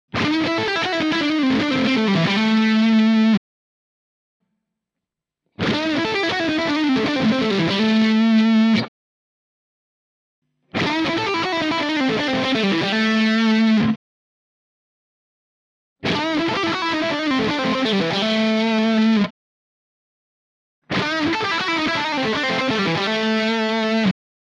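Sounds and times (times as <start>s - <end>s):
lead electric guitar through a single coil pickup: 0.1s - 3.4s, 5.6s - 8.9s, 10.7s - 14.0s, 16.0s - 19.3s, 20.9s - 24.1s.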